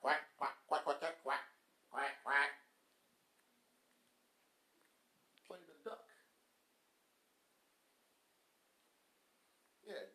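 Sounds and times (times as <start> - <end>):
man's voice imitating duck quacks: 0.0 - 2.7.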